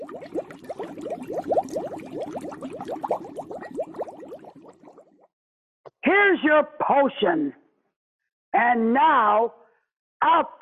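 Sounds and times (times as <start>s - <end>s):
stirred cauldron bubbling and gurgling as ingredients are thrown in: 0.0s - 5.3s
speech: 6.4s - 7.6s, 8.6s - 9.6s, 10.2s - 10.6s.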